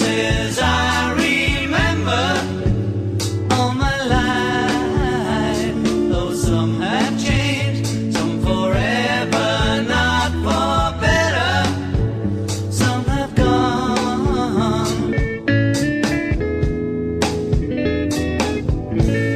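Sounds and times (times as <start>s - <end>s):
person singing a rock song: 0.0s - 2.7s, 3.5s - 12.1s, 12.7s - 15.5s
rock band playing at a funeral: 0.0s - 19.3s.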